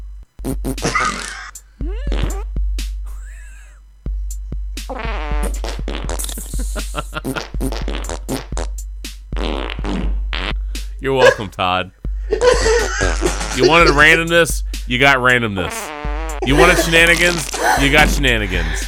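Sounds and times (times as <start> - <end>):
fart sound effects remix: 0.4 - 2.5, 4.9 - 8.8, 9.4 - 10.6, 12.5 - 14.2, 15.6 - 18.4
speech: 11.0 - 15.8, 16.4 - 18.8
laughter: 12.3 - 14.3, 16.4 - 18.8.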